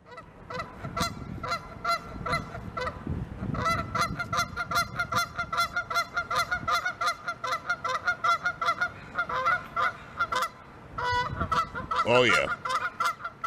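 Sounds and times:
angry goose honking aggressively: 0:00.0 - 0:13.4
speech: 0:12.1 - 0:12.6.

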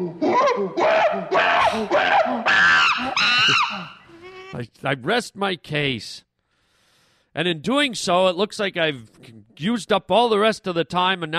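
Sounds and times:
speech: 0:00.0 - 0:02.6, 0:04.6 - 0:06.3, 0:07.4 - 0:11.3
monkey screaming in shrill harmonic shrieks: 0:00.0 - 0:04.6.

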